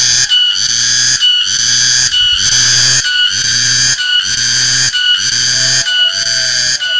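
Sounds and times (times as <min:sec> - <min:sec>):
cicada buzzing: 0:00.0 - 0:06.9
faint low hum: 0:01.1 - 0:03.8.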